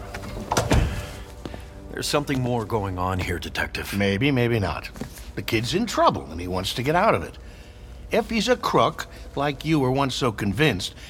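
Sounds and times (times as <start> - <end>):
door being shut with a solid low thud: 0.5 - 1.1
speech: 2.0 - 7.4, 8.1 - 11.0.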